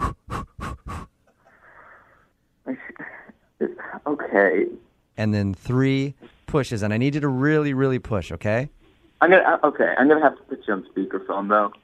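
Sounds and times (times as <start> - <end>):
woman in labour panting with quick breaths: 0.0 - 2.0
speech: 4.0 - 11.8.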